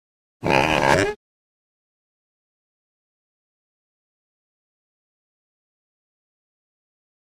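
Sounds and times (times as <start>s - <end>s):
boar snorting: 0.4s - 1.2s.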